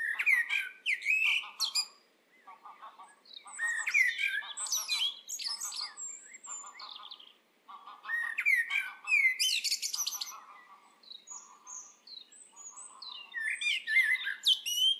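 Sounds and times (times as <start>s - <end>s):
Eurasian blackbird Turdus merula song: 0.0s - 14.9s.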